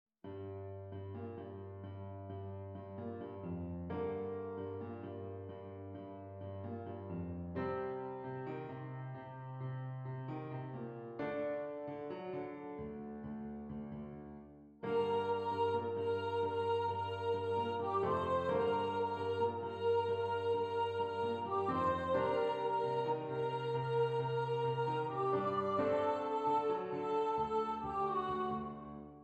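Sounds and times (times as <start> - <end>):
piano: 0.2 - 29.2
person singing: 14.9 - 28.8.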